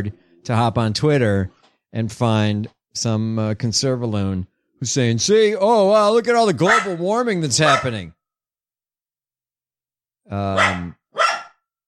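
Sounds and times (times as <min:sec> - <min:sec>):
speech: 0:00.0 - 0:08.2, 0:10.3 - 0:11.0
dog barking: 0:06.6 - 0:07.0, 0:07.6 - 0:08.0, 0:10.5 - 0:11.6.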